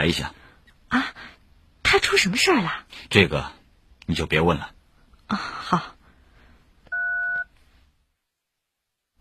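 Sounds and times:
speech: 0.0 - 1.3, 1.9 - 6.0
faint hiss: 0.0 - 9.2
telephone keypad tone while dialing a phone number: 6.9 - 7.4.

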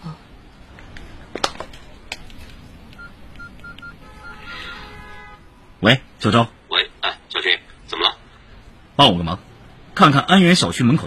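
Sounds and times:
low steady hum: 0.0 - 10.1
telephone keypad dialing beeps: 3.0 - 4.4
speech: 5.8 - 6.6, 9.0 - 11.0.

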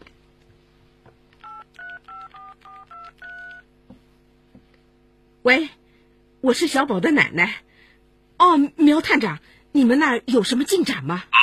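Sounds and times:
quiet room hum: 0.0 - 11.4
mobile phone electronic keypad dialing tones: 1.4 - 3.6
speech: 5.4 - 5.8, 6.4 - 7.7, 8.4 - 11.4.

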